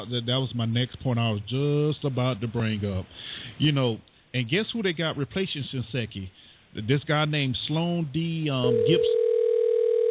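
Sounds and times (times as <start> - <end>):
speech: 0.0 - 9.2
phone ringing with a pure electronic tone: 8.6 - 10.1.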